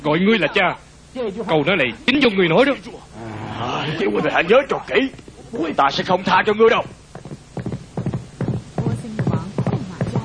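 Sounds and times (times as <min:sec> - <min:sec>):
speech: 0:00.0 - 0:07.0
ridden horse galloping at full speed: 0:06.4 - 0:10.2.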